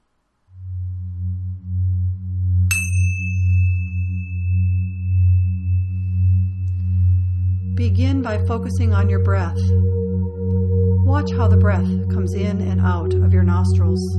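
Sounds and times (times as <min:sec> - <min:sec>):
steady low drone: 0:00.5 - 0:14.1
meditation bell struck to begin a meditation: 0:02.7 - 0:11.0
speech: 0:08.0 - 0:10.0, 0:11.1 - 0:14.1.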